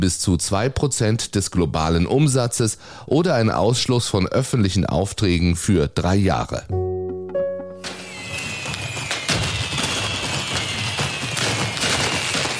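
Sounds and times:
speech: 0.0s - 6.8s
New Year's Eve fireworks and firecrackers bursting: 7.8s - 12.5s.

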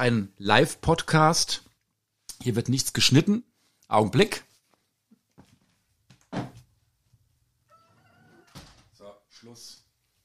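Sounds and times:
speech: 0.0s - 1.6s, 2.4s - 4.5s, 9.4s - 9.8s
shuffling: 4.4s - 7.4s
soft knocks and rustles: 4.6s - 7.2s
door being shut: 6.3s - 6.6s, 8.5s - 9.0s.

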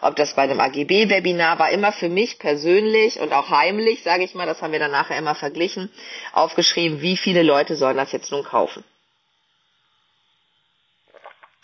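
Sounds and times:
speech: 0.0s - 8.9s
faint hiss: 0.0s - 11.6s
person sipping coffee with soft wet slurps: 11.1s - 11.6s.

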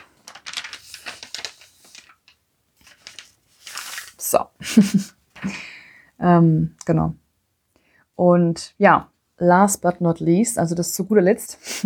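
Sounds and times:
paper page being turned: 0.0s - 4.3s
speech: 4.3s - 5.6s, 6.2s - 7.2s, 8.2s - 11.8s.

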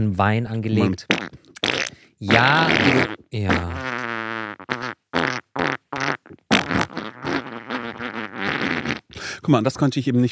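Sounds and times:
speech: 0.0s - 3.9s, 9.5s - 10.3s
fart sound effect: 1.1s - 9.2s.

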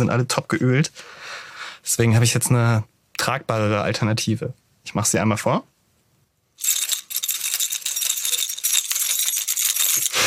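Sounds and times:
speech: 0.0s - 5.7s
small bunch of keys jingling in a hand: 6.6s - 10.2s.

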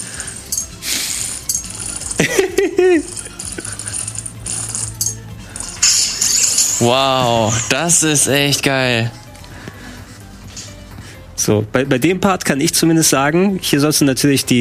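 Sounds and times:
zipper being opened and closed: 0.3s - 2.3s, 3.0s - 5.8s
laughter: 2.2s - 3.9s
speech: 2.7s - 3.2s, 6.8s - 9.2s, 11.4s - 14.5s.

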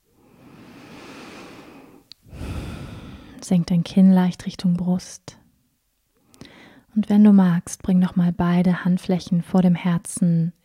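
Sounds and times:
deep breathing in and out during a guided meditation: 0.1s - 3.4s, 6.3s - 6.9s
speech: 3.4s - 5.4s, 7.0s - 10.6s.

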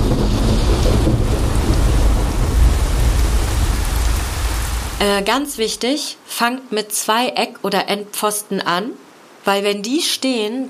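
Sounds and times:
deep thunder rumbling: 0.0s - 5.8s
heavy rain shower: 0.0s - 7.4s, 8.4s - 10.4s
speech: 5.0s - 10.6s.

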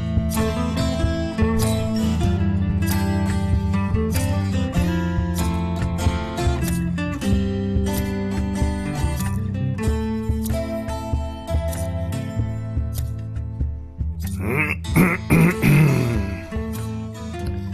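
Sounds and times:
music: 0.0s - 17.7s
person clearing throat: 14.3s - 16.6s.

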